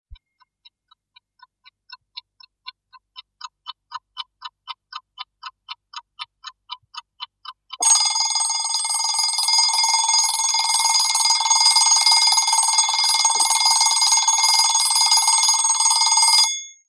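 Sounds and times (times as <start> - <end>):
alarm clock: 7.8 - 16.8.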